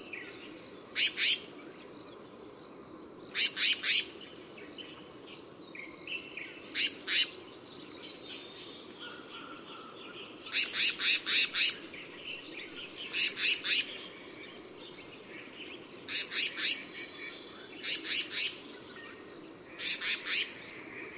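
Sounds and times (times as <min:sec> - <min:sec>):
black-naped monarch calling: 0:00.2 - 0:01.6, 0:06.2 - 0:07.5, 0:08.4 - 0:14.6, 0:15.3 - 0:21.1.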